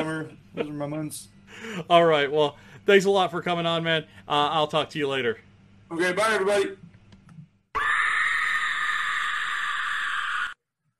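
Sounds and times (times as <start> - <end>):
speech: 0.0 - 6.8
pig screaming: 7.8 - 10.6.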